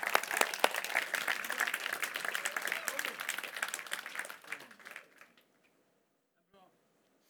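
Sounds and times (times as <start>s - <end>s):
audience applauding: 0.0s - 5.4s.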